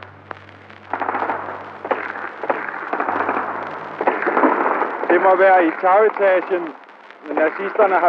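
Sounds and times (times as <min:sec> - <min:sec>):
rumbling noisy din: 0:00.0 - 0:07.6
hiss of old recording equipment: 0:00.0 - 0:08.0
sustained crackling: 0:00.0 - 0:08.0
gunshots in a street firefight: 0:00.9 - 0:06.6
speech: 0:05.1 - 0:08.0.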